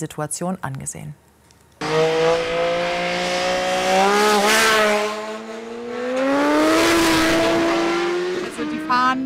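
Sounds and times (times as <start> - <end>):
speech: 0.0 - 1.3
car engines roaring as cars speed into a bend on a country road: 1.8 - 9.2.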